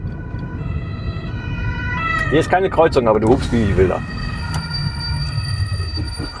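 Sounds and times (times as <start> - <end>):
ambulance siren wailing: 0.0 - 6.3
low rumble of road traffic: 0.0 - 6.3
speech: 2.3 - 4.3
high-pitched metallic brake squeal: 3.1 - 6.3.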